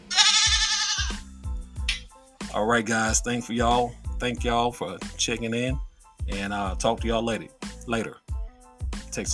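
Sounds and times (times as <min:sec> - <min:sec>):
goat bleating sound effect: 0:00.1 - 0:01.2
speech: 0:02.6 - 0:08.2, 0:09.1 - 0:09.3.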